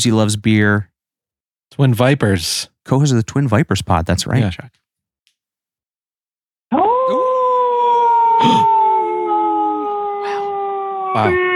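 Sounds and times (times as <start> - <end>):
speech: 0.0 - 0.9, 1.7 - 4.8, 11.1 - 11.5
werewolf howl sound effect: 6.7 - 11.5.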